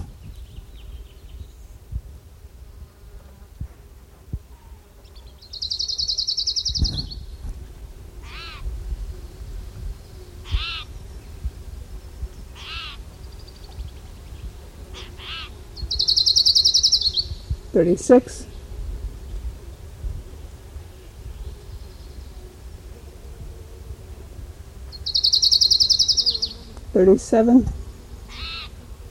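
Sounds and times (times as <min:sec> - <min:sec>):
orange-crowned warbler singing high buzzy trills: 0:00.2 - 0:01.9, 0:04.4 - 0:23.2, 0:24.8 - 0:28.9
orange-crowned warbler sharp higher chirped notes: 0:05.4 - 0:07.4, 0:15.0 - 0:17.5, 0:25.0 - 0:26.7
speech: 0:17.8 - 0:18.5, 0:27.0 - 0:27.8.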